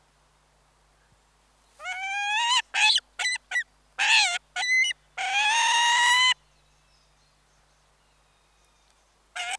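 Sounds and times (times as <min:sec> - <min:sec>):
peregrine falcon chirrups and harsh annoyance calls: 0:01.8 - 0:06.4, 0:09.4 - 0:09.5.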